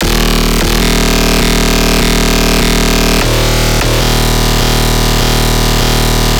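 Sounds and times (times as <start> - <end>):
dubstep bass shot in D sharp: 0.0 - 6.3.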